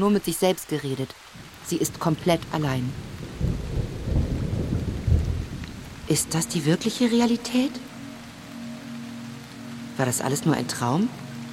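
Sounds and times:
speech: 0:00.0 - 0:03.6, 0:06.1 - 0:07.9, 0:10.0 - 0:11.2
steady hiss of falling rain: 0:00.0 - 0:11.5
deep rolling thunder: 0:01.4 - 0:07.9.

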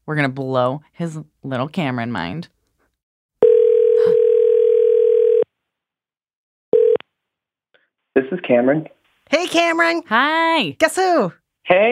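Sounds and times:
speech: 0:00.1 - 0:02.6, 0:08.2 - 0:11.9
ringback tone of an outgoing telephone call: 0:03.4 - 0:05.5, 0:06.7 - 0:07.0.

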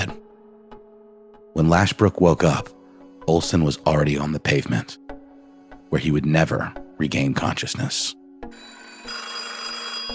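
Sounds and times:
speech: 0:01.6 - 0:05.0, 0:05.9 - 0:08.7
old-fashioned telephone bell ringing in a hotel: 0:08.5 - 0:10.1.

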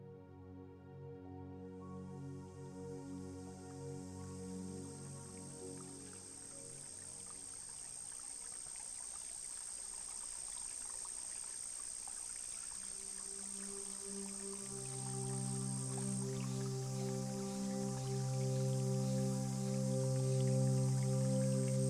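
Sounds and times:
thin high insect-like hiss: 0:02.8 - 0:21.8
babbling brook trickling and gurgling over stones: 0:04.8 - 0:21.8.

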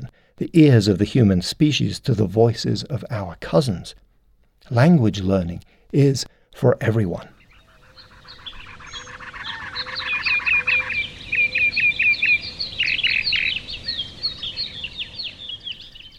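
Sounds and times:
speech: 0:00.4 - 0:04.0, 0:04.6 - 0:07.3
dense chorus of bird calls: 0:07.2 - 0:16.1
fast rattling bird trill: 0:07.4 - 0:14.8.

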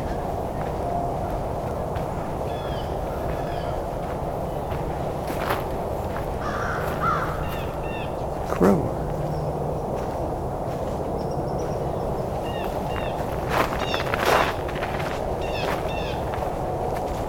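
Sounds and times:
birds chirping: 0:00.0 - 0:05.1, 0:06.1 - 0:14.8, 0:15.4 - 0:16.4
highway traffic hum: 0:00.0 - 0:17.2
crows cawing: 0:06.4 - 0:08.7.

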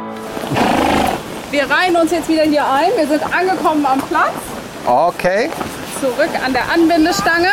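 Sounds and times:
horse neighing and calling to its herd: 0:00.3 - 0:01.3
horse breathy snort: 0:00.3 - 0:01.4
speech: 0:01.5 - 0:07.5.

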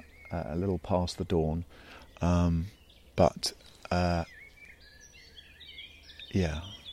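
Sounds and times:
faint high twittering songbirds by a pond: 0:00.0 - 0:06.9
speech: 0:00.3 - 0:04.4, 0:06.3 - 0:06.8
loud harsh drawn-out bird calls by a pond in early morning: 0:01.6 - 0:06.9.

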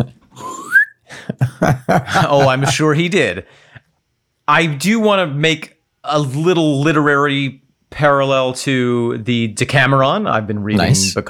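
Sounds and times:
speech: 0:00.0 - 0:00.2, 0:01.6 - 0:03.7, 0:04.5 - 0:11.2
rising slide whistle sweep: 0:00.5 - 0:00.9
laughter: 0:01.2 - 0:03.1.

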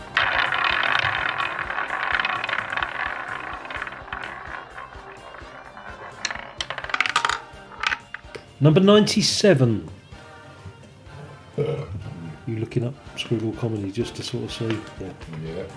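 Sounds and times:
prize wheel being spun: 0:00.0 - 0:08.1
sharp clatter: 0:00.0 - 0:08.4
speech: 0:08.6 - 0:10.0, 0:13.3 - 0:15.7.

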